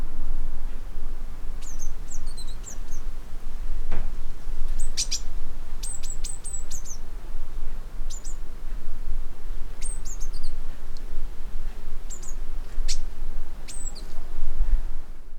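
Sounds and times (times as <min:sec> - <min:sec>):
steady low rumble: 0:00.0 - 0:15.3
Eurasian blue tit Cyanistes caeruleus calls: 0:01.5 - 0:03.2, 0:04.2 - 0:07.2, 0:08.0 - 0:08.8, 0:09.5 - 0:14.2.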